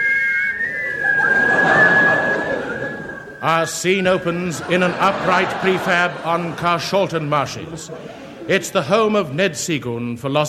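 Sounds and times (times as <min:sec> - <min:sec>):
whistled theme tune: 0:00.0 - 0:05.8
laughter: 0:00.8 - 0:09.6
speech: 0:03.4 - 0:10.4.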